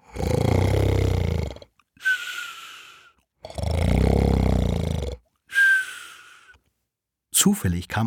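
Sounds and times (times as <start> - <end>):
loud exaggerated snoring: 0.0 - 5.8
speech: 7.4 - 8.0.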